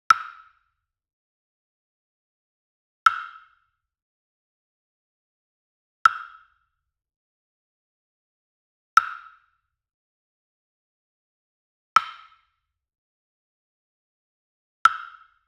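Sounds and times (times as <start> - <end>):
standard wood block hit: 6.1 - 6.4, 9.0 - 9.3, 14.9 - 15.2.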